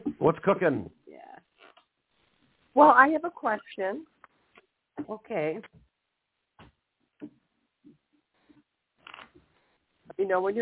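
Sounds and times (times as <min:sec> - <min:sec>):
speech: 0:00.2 - 0:01.0, 0:02.8 - 0:04.1, 0:05.0 - 0:05.8, 0:10.1 - 0:10.6
playing cards being shuffled with papery riffles and taps: 0:09.0 - 0:09.5.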